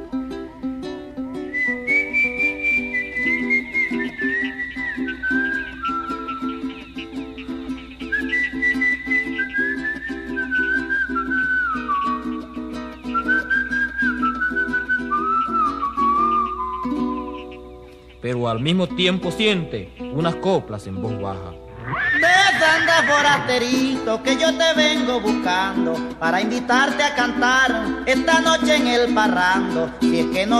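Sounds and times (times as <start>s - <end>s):
man whistling slowly while walking alone across a plain: 1.4s - 6.8s, 8.0s - 17.4s, 22.0s - 30.5s
speech: 18.5s - 30.5s.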